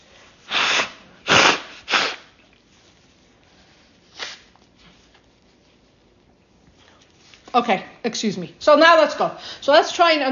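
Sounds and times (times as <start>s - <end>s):
nose blowing into a tissue: 0.4s - 2.4s, 4.1s - 4.5s
speech: 7.6s - 10.2s.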